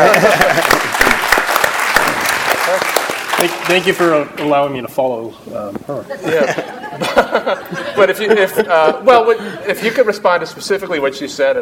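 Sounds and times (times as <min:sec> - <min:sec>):
laughter: 0:00.0 - 0:01.4, 0:06.1 - 0:10.2
audience applause: 0:00.0 - 0:04.1
speech: 0:03.5 - 0:11.6.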